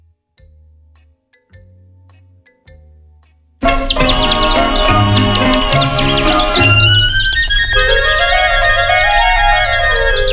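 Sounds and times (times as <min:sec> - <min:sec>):
bright chirping high notes imitating birdsong: 0:03.6 - 0:10.3
old-style French chanson recording introduction: 0:03.6 - 0:10.3
sweeping rising-and-falling melodic glide: 0:03.6 - 0:10.3.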